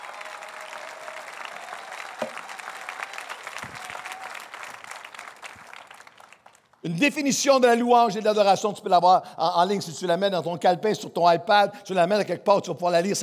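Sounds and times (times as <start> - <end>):
church congregation applauding in an ovation during a morning worship service: 0.0 - 6.9
speech: 6.8 - 13.2.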